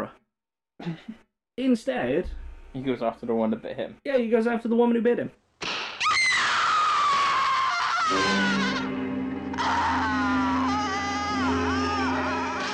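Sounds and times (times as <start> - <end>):
speech: 0.8 - 5.4
low steady droning rumble: 2.2 - 3.0
woman screaming: 6.0 - 12.7.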